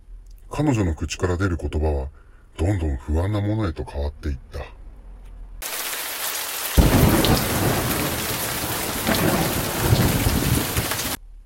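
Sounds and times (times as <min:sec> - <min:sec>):
speech: 0:00.6 - 0:04.8
heavy rain in the mountains: 0:05.6 - 0:11.2
deep rumble of thunder: 0:06.8 - 0:11.2.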